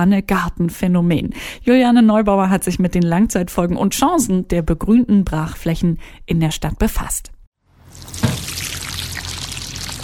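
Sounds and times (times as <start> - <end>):
speech: 0.0 - 7.3
water pouring on young tomato plants in a greenhouse: 7.8 - 10.0.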